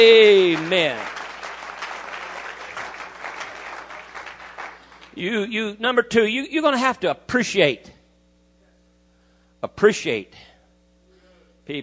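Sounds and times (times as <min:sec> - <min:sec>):
speech: 0:00.0 - 0:01.1, 0:05.2 - 0:08.0, 0:09.6 - 0:10.5, 0:11.7 - 0:11.8
audience clapping hands: 0:00.0 - 0:05.4.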